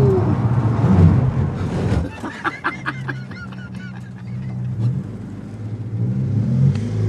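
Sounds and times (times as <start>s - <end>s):
rally car engine roaring on a course: 0.0s - 7.0s
laughter: 2.0s - 4.7s.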